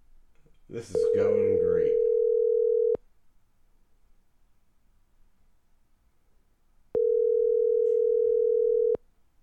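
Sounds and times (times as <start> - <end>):
speech: 0.7 - 2.1
telephone ringback tone on a call: 1.0 - 3.0, 7.0 - 9.0.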